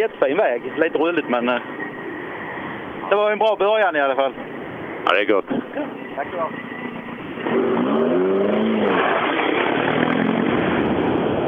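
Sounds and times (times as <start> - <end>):
speech: 0.0 - 1.8, 3.0 - 6.7, 7.5 - 7.7
broad rushing noise: 0.0 - 11.4
rally car roaring past at speed on a stage: 7.2 - 11.4.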